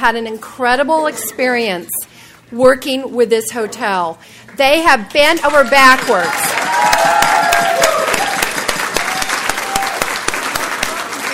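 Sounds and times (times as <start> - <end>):
speech: 0.0 - 6.6
room full of people applauding: 5.5 - 11.3.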